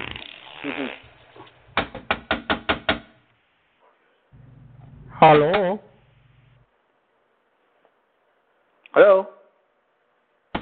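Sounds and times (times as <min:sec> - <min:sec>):
speech: 0:00.6 - 0:01.1, 0:05.2 - 0:05.8, 0:09.0 - 0:09.3
sharp knocks on a room door at an inn: 0:01.8 - 0:03.1.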